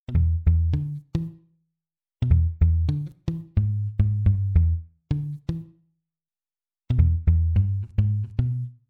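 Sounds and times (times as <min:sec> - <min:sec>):
muted funk guitar: 0:00.1 - 0:01.4, 0:02.2 - 0:05.8, 0:06.9 - 0:08.8.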